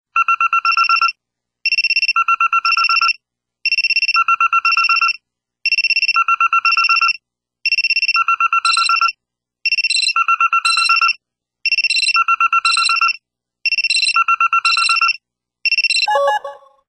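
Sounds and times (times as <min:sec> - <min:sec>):
Samsung SGH-i200 mobile phone wake-up alarm: 0:00.2 - 0:16.7.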